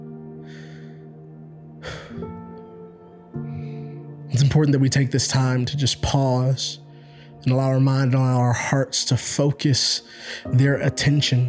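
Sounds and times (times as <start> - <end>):
deep breathing: 0.2 - 4.3, 6.8 - 7.4, 10.0 - 10.5
speech: 4.4 - 6.8, 7.4 - 11.4.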